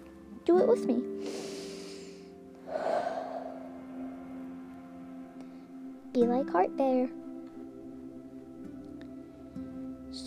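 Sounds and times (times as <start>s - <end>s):
faint steady hum: 0.0s - 10.2s
speech: 0.5s - 1.5s, 6.2s - 7.2s
deep breath drawn in and let out: 1.2s - 4.0s.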